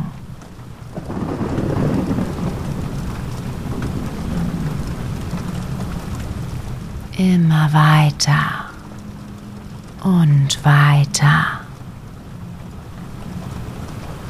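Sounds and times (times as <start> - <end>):
steady wash of rain: 0.0 - 14.2
deep rolling thunder: 0.9 - 7.1
speech: 7.2 - 8.6, 10.0 - 11.6.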